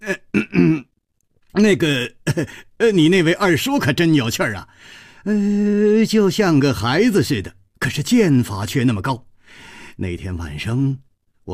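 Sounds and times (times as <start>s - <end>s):
voice imitating a dry cough and throat clearing: 0.0s - 0.9s
speech: 1.6s - 11.5s.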